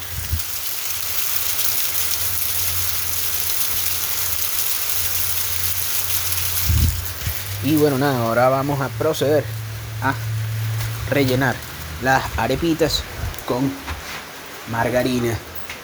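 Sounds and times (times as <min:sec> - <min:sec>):
rainwater running down a rain chain: 0:00.0 - 0:15.8
low rumble: 0:06.6 - 0:14.1
speech: 0:07.6 - 0:10.3, 0:11.1 - 0:13.9, 0:14.7 - 0:15.5.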